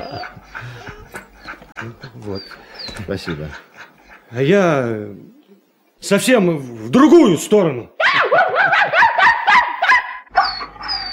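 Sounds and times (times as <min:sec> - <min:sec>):
speech: 0:01.8 - 0:03.7, 0:04.3 - 0:05.4, 0:06.0 - 0:08.3
central Russian mongrel dog barking: 0:08.2 - 0:11.1.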